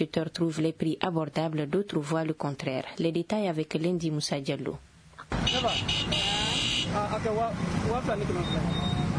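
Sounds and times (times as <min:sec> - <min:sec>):
speech: 0:00.0 - 0:04.9, 0:05.5 - 0:08.9
engines of motorbikes and cars rumbling in busy street traffic: 0:05.0 - 0:09.1
sustained horn honk: 0:05.3 - 0:07.1.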